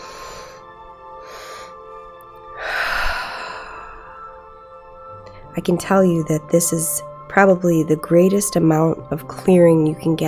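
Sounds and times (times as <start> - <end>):
deep inhale and exhale breathing during a breathing exercise: 0.0 - 5.5
speech: 5.6 - 10.2.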